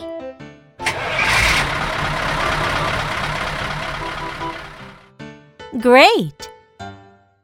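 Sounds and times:
truck engine cranking and roaring to life: 0.8 - 5.0
speech: 5.7 - 6.5
short bursts of voice: 5.8 - 6.4.

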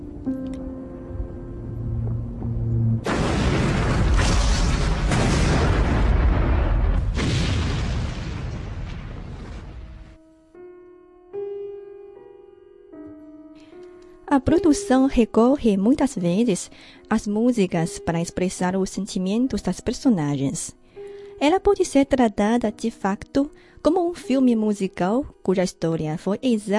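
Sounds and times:
sustained musical tones: 0.0 - 3.1
ship at sea blowing up in a massive explosion: 2.6 - 10.2
speech: 14.4 - 20.8, 21.4 - 26.7.

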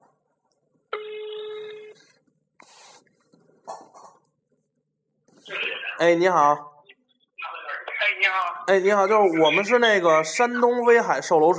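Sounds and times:
phone line tone: 0.9 - 2.0
speech: 6.0 - 6.7, 8.7 - 11.5.

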